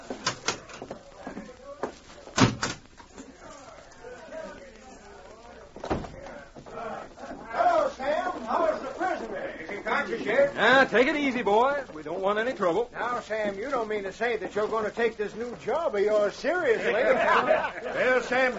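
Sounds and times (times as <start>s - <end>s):
crowd of men's voices murmuring: 0.0s - 2.4s, 3.0s - 18.5s
cell door slamming shut: 2.4s - 2.8s
speech: 10.8s - 18.5s
laughter: 16.5s - 18.5s.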